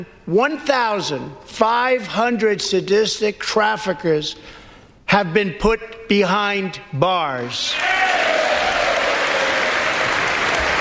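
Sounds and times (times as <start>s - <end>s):
speech: 0.0s - 8.1s
large audience applauding: 7.8s - 10.7s.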